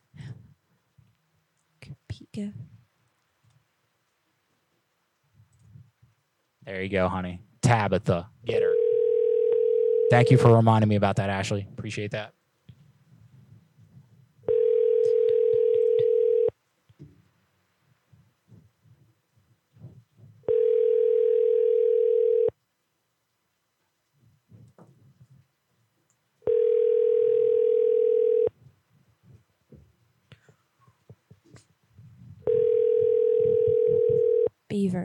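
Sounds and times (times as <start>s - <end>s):
speech: 1.8s - 2.7s, 6.7s - 8.8s, 10.1s - 12.4s
ringback tone of an unanswered outgoing telephone call: 8.6s - 10.5s, 14.5s - 16.5s, 20.5s - 22.5s, 26.4s - 28.6s, 32.4s - 34.6s.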